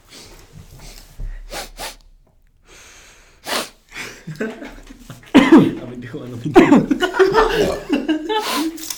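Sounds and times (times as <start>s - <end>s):
nose sniffing: 0.0s - 4.1s, 8.3s - 8.9s
laughter: 4.0s - 8.9s
speech: 4.3s - 5.0s, 5.6s - 8.8s.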